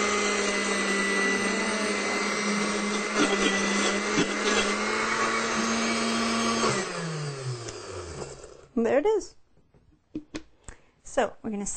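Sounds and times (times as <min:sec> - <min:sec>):
blender on puree setting blending a sauce with water: 0:00.0 - 0:08.8
speech: 0:08.8 - 0:09.4, 0:11.2 - 0:11.7.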